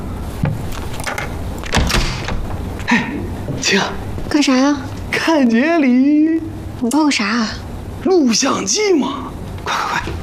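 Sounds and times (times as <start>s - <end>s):
door being opened with clunks and a rattling slide: 0.4s - 2.7s
speech: 3.6s - 10.2s.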